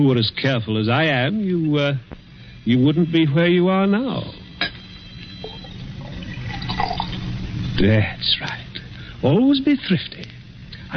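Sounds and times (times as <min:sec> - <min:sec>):
speech: 0:00.0 - 0:04.4, 0:07.8 - 0:10.3
brandy poured into a glass decanter: 0:05.3 - 0:07.4.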